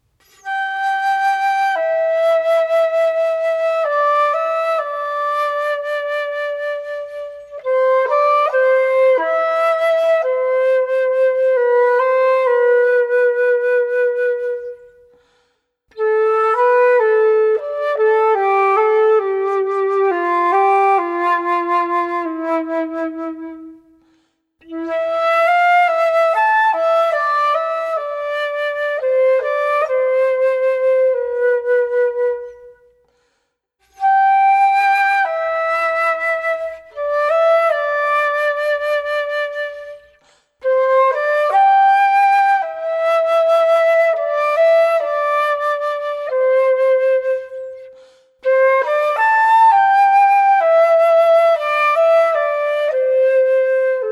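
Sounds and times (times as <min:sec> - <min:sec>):
solo flute: 0:00.0 - 0:54.1.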